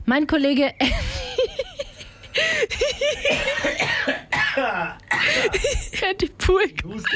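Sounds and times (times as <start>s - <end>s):
speech: 0.1s - 1.2s, 2.7s - 7.1s
man coughing: 3.2s - 6.0s.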